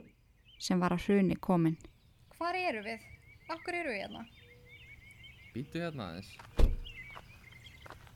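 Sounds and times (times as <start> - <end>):
speech: 0.6 - 4.4, 5.6 - 6.6
car passenger door yanked open with a heavy clunk: 6.6 - 6.9.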